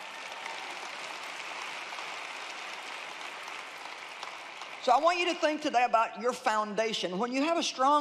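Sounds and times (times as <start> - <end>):
crowd applauding: 0.0 - 5.7
speech: 4.8 - 7.9.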